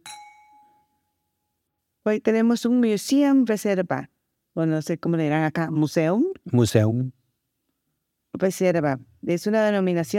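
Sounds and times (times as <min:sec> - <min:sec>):
wine glasses clinking in a toast: 0:00.0 - 0:01.0
speech: 0:02.0 - 0:07.2, 0:08.3 - 0:10.1.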